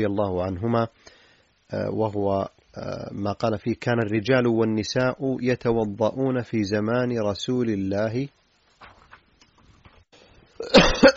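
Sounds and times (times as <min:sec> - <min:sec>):
speech: 0:00.0 - 0:08.4
person coughing harshly: 0:10.6 - 0:11.1.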